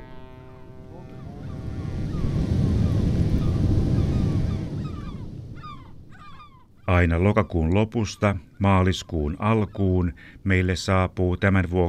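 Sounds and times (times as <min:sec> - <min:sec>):
giant ocean waves breaking on shore: 0:00.0 - 0:08.7
speech: 0:07.0 - 0:11.8.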